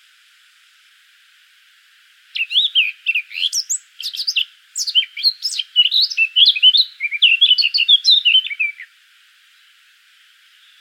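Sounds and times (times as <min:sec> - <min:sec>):
Eurasian blackcap Sylvia atricapilla song: 0:02.3 - 0:08.9.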